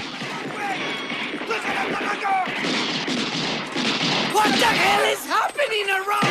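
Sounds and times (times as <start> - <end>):
gunfire barrage from shooters on a rooftop: 0.0 - 6.3
speech: 4.5 - 6.3.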